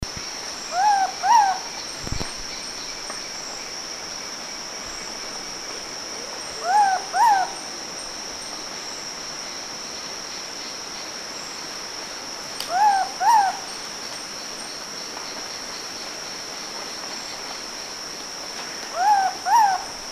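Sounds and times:
Pitta superba superb pitta calling: 0.7s - 2.1s, 6.6s - 7.7s, 12.6s - 13.7s, 18.9s - 20.0s.

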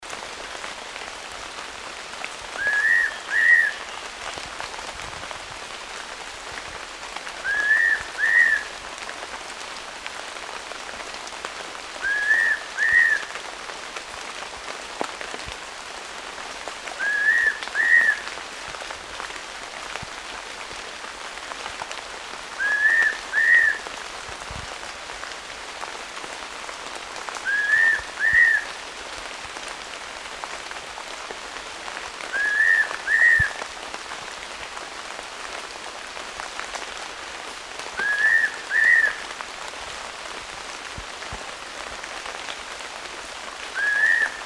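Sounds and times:
Pitta nympha calling: 2.5s - 4.2s, 7.4s - 8.8s, 12.0s - 13.3s, 17.0s - 18.3s, 22.6s - 23.8s, 27.4s - 28.8s, 32.3s - 33.6s, 38.0s - 39.3s, 43.8s - 44.4s.

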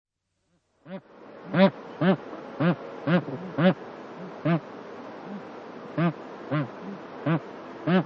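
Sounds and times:
speech: 0.9s - 3.8s
Bar-headed goose Anser indicus honking: 0.9s - 4.6s, 6.0s - 8.0s.

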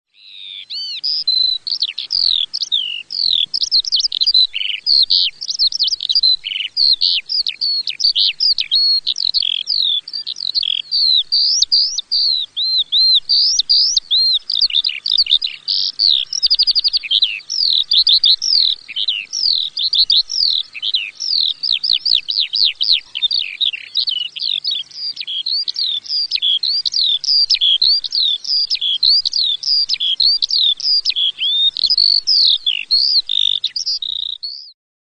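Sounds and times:
skylark singing a long song: 0.1s - 34.8s.

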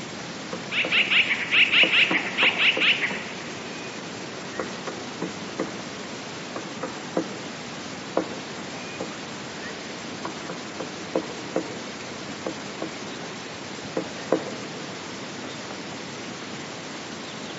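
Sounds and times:
steady hiss: 0.0s - 17.5s
Eurasian blue tit buzzy high calls: 0.6s - 4.9s.

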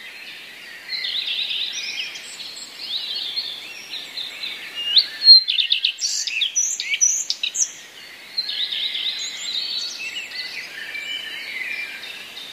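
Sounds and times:
common redstart song with mimicry of other passerine birds: 0.2s - 12.5s.

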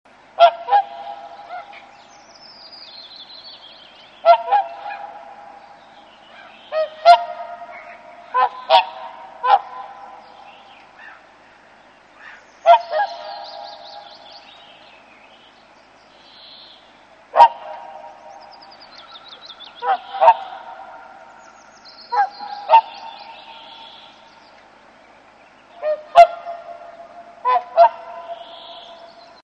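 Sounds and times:
whooper swan calling: 0.3s - 2.2s, 4.1s - 11.3s, 12.2s - 14.6s, 17.3s - 25.0s, 25.6s - 29.4s.

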